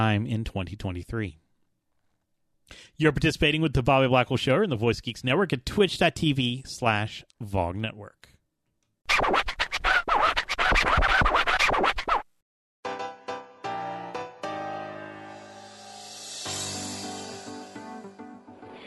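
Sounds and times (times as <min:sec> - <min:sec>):
speech: 0:00.0 - 0:01.4, 0:02.7 - 0:08.3
dense choppy scratch-like instrumental rhythm: 0:09.1 - 0:12.2.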